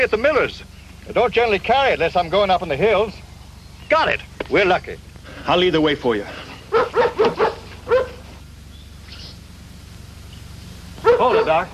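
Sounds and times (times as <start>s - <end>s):
speech: 0.0s - 3.2s, 3.9s - 8.0s, 11.2s - 11.7s
dog barking: 6.7s - 8.3s, 11.0s - 11.7s.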